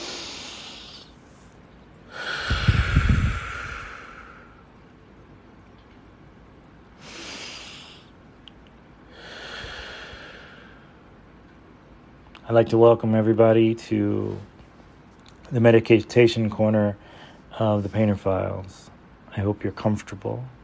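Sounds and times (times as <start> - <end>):
slow deep breathing: 0.0 - 4.7, 7.0 - 8.2, 9.0 - 11.1, 17.0 - 17.9
speech: 12.5 - 14.5, 15.5 - 20.6.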